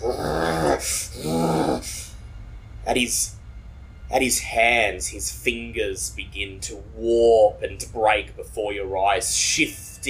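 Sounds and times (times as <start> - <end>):
speech: 0.0 - 1.1, 2.9 - 3.4, 4.1 - 10.0
voice imitating the bestial growling of a man transforming into a beast: 0.0 - 2.1
hissing breaths: 0.0 - 2.2.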